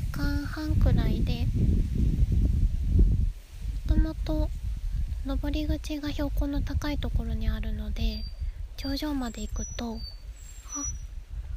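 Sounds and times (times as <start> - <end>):
low steady wind rumble outdoors: 0.0 - 11.5
speech: 0.2 - 2.4, 4.2 - 4.6, 5.2 - 10.1, 10.8 - 11.0
faint bird call by a lake: 9.3 - 11.2.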